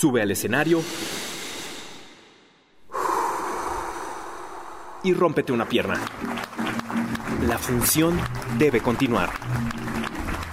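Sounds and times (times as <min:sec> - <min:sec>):
speech: 0:00.0 - 0:01.3, 0:05.0 - 0:10.2
deep breath drawn in before stepping onto a stage: 0:00.8 - 0:05.1.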